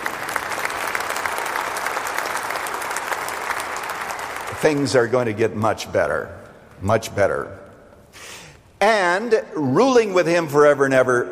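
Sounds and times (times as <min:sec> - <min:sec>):
roomful of people clapping: 0:00.0 - 0:05.2
speech: 0:04.6 - 0:11.2.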